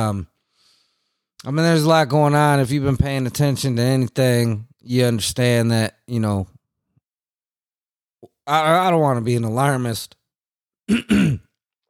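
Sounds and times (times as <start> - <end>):
speech: 0.0 - 0.3, 1.4 - 6.5, 8.5 - 10.2, 10.9 - 11.4
throat clearing: 10.9 - 11.6.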